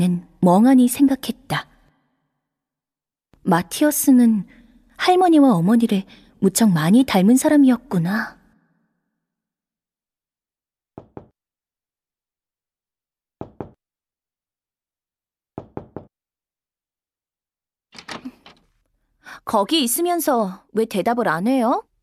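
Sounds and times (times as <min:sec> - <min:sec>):
speech: 0:00.0 - 0:01.7, 0:03.4 - 0:08.4, 0:19.4 - 0:21.9
knocking on a door: 0:11.0 - 0:11.4, 0:13.4 - 0:13.8, 0:15.6 - 0:16.2.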